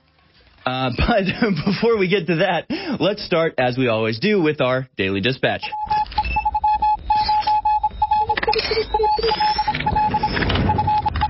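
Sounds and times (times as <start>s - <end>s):
speech: 0.7s - 6.0s
Morse code beeps: 5.7s - 11.2s
high chirping tone: 5.7s - 11.2s
static: 5.8s - 11.2s.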